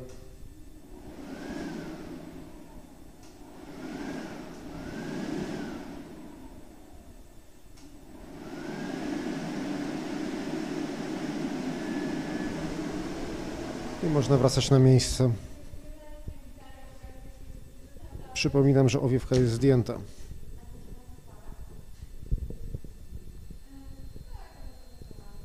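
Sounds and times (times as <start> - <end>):
hair dryer blowing with a thin whine: 0.0 - 15.8
speech: 14.1 - 15.5, 18.4 - 20.2.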